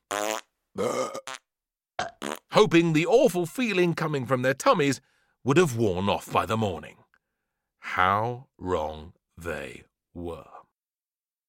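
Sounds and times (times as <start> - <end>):
comic fart noises: 0.0 - 2.6
speech: 2.6 - 7.0, 7.8 - 10.6.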